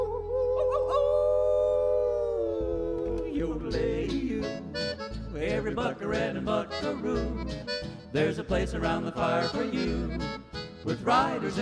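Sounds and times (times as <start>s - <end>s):
human voice howling like a coyote: 0.0s - 3.4s
country-style musical backing: 3.1s - 11.5s
speech: 3.4s - 11.5s.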